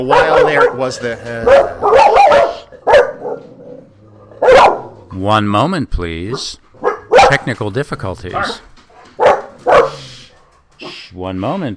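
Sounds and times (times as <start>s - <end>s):
speech: 0.0s - 2.5s, 5.2s - 6.6s, 7.3s - 8.7s, 11.1s - 11.7s
dog barking: 0.0s - 5.0s, 6.3s - 7.5s, 8.3s - 10.2s, 10.8s - 11.1s.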